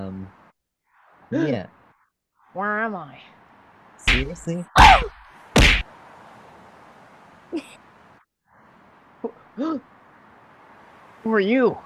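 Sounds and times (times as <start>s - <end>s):
speech: 1.3s - 1.8s, 2.6s - 3.4s, 4.1s - 5.2s, 7.5s - 7.8s, 9.2s - 9.9s, 11.2s - 11.8s
punches landing: 4.1s - 5.9s.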